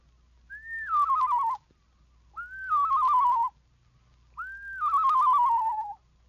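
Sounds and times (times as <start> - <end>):
person whistling screech owl song imitation: 0.5 - 1.6, 2.4 - 3.6, 4.4 - 6.0.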